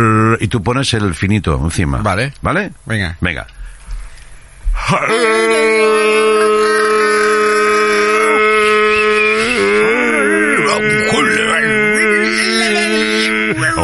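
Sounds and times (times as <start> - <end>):
speech: 0.0 - 3.8, 4.8 - 6.7, 13.5 - 13.8
person imitating a cow mooing with a long droning call: 4.8 - 13.8.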